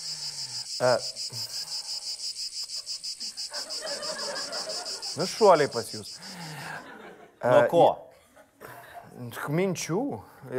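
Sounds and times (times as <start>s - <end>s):
night crickets or cicadas chirping as an added sound effect: 0.0s - 7.1s
speech: 0.8s - 1.6s, 5.2s - 6.3s, 7.4s - 8.0s, 9.2s - 10.5s
laughter: 3.5s - 9.2s.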